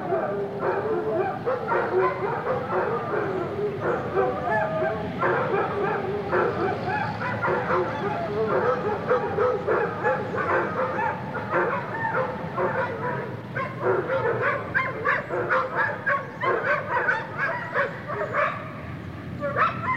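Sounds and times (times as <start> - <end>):
dogs barking and yipping in a kennel: 0.0 - 19.9
speech: 1.7 - 4.6.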